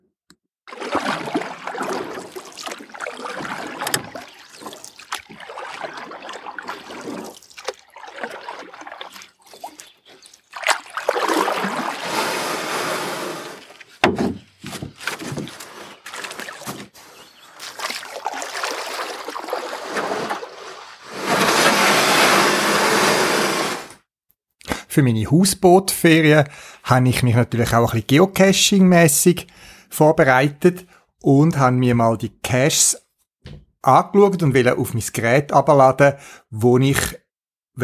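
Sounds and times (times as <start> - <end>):
water rushing and splashing: 0.7 - 14.0, 14.8 - 23.8
loud steady roar of spray: 12.0 - 13.7
speech: 25.0 - 33.0, 33.8 - 37.2.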